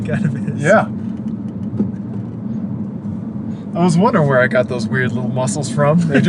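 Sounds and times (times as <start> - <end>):
speech: 0.0 - 1.0, 3.7 - 6.2
faint rattles and bumps in a moving car: 0.0 - 3.1
car engine drone in the cabin of a moving car: 0.0 - 6.2
road rumble in the cabin of a moving car: 0.0 - 6.2.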